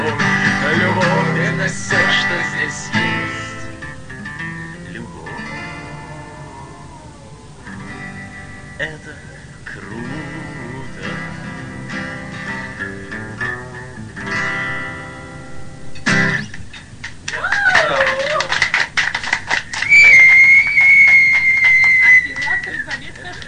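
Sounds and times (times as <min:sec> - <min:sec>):
busy noise: 0:00.0 - 0:23.4
speech: 0:01.6 - 0:03.1
sustained high-pitched whistle: 0:19.8 - 0:22.9.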